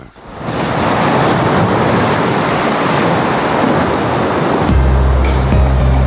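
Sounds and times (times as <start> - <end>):
sea waves crashing: 0.0 - 6.0
low droning tone: 4.7 - 6.0.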